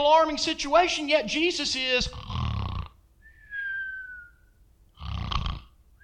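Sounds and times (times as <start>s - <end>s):
speech: 0.0s - 2.2s
voice imitating loud rough snoring: 2.0s - 3.0s, 5.0s - 5.8s
thin whistling exhale of voice imitating snoring: 3.2s - 4.6s.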